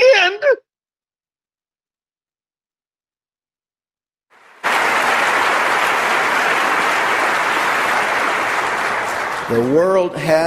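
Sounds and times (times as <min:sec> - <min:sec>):
crowd applauding: 0:04.3 - 0:10.4
speech: 0:09.5 - 0:10.4.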